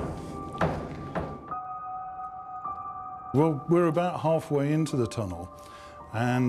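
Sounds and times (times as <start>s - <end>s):
door banging shut: 0.0s - 1.6s
speech: 3.3s - 6.4s.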